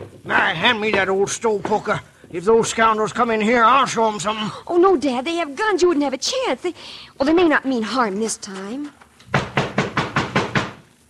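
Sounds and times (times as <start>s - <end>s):
men knocking heavily on a door: 0.0s - 2.1s, 9.3s - 10.8s
speech: 0.5s - 9.0s.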